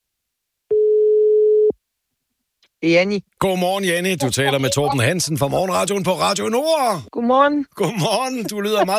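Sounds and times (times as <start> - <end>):
steady telephone tone: 0.7 - 1.8
speech: 2.8 - 8.9
laughter: 7.8 - 8.9.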